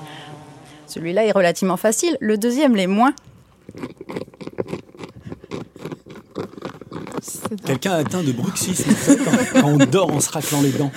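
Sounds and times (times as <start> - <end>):
speech: 0.9 - 4.3, 7.5 - 10.9
caterpillar chewing a leaf, amplified: 3.2 - 8.9
laughter: 8.2 - 10.9.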